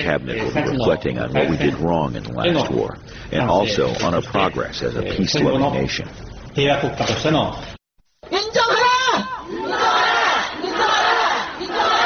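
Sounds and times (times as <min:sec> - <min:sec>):
speech: 0:00.0 - 0:08.7
large protest crowd in Seoul chanting and shouting in unison: 0:08.8 - 0:12.0.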